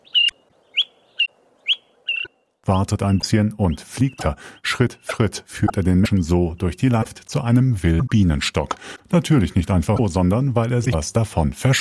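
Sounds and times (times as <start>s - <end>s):
small grey-brown southern African honeyguide bird chirping: 0.0s - 7.1s
speech: 2.6s - 11.7s.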